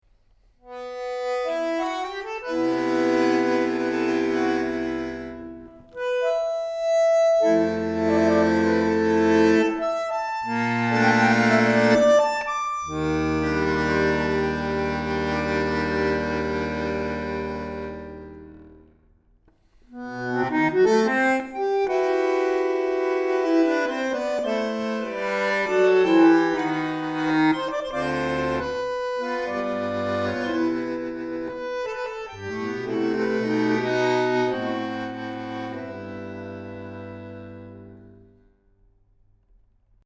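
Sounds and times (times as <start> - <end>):
bandoneon playing: 0.7 - 18.7, 20.0 - 38.2.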